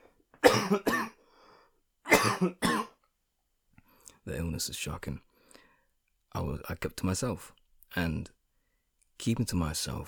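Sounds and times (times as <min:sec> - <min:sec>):
harsh coughing: 0:00.4 - 0:01.2, 0:02.1 - 0:03.0
speech: 0:00.7 - 0:01.1, 0:02.4 - 0:02.7, 0:04.3 - 0:05.3, 0:06.3 - 0:08.4, 0:09.2 - 0:10.0
faint breath: 0:01.2 - 0:01.8, 0:05.3 - 0:06.0.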